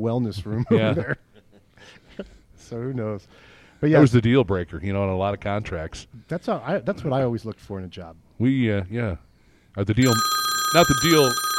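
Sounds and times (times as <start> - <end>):
speech: 0.0 - 11.5
telephone ringing for an incoming call: 10.0 - 11.5.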